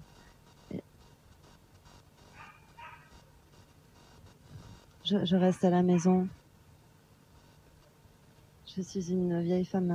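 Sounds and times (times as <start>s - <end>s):
small puppy barking and yipping: 2.3s - 3.2s
speech: 5.1s - 6.4s, 8.8s - 9.9s.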